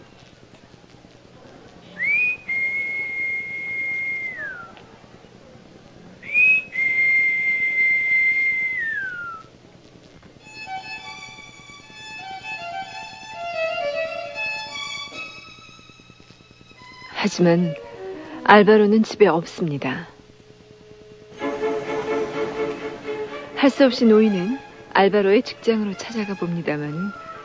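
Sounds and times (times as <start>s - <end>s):
low steady hum: 0.0s - 27.4s
man whistling into an intercom as a signal: 2.0s - 4.8s, 6.2s - 9.5s
speech: 17.3s - 17.9s, 18.5s - 20.1s, 23.6s - 27.2s.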